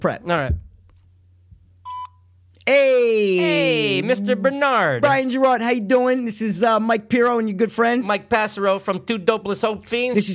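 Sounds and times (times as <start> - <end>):
speech: 0.0 - 0.6, 2.7 - 10.3
constant low electrical hum: 0.0 - 10.3
telephone keypad tone during dialing: 1.9 - 2.2.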